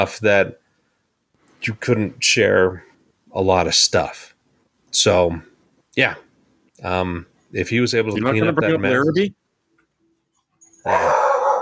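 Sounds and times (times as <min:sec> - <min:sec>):
speech: 0:00.0 - 0:00.6, 0:01.6 - 0:04.3, 0:04.9 - 0:06.2, 0:06.8 - 0:09.4, 0:10.8 - 0:11.2
dog barking: 0:10.9 - 0:11.6.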